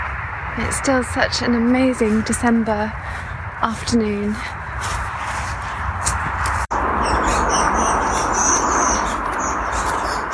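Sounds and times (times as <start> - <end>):
steady outdoor rumble: 0.0 - 10.3
speech: 0.6 - 5.0
cluster of sparrows chirping and squabbling: 3.0 - 10.3.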